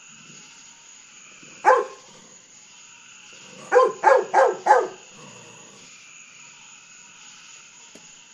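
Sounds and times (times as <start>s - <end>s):
faint steady background hiss: 0.0s - 8.3s
golden retriever barking at fireworks at night: 1.6s - 2.1s, 3.6s - 5.5s.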